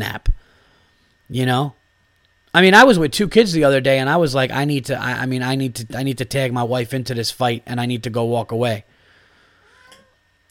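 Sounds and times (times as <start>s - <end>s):
speech: 0.0s - 0.3s, 1.3s - 1.8s, 2.6s - 8.9s
low hum: 0.0s - 10.4s
short faint cat meow: 9.6s - 10.2s.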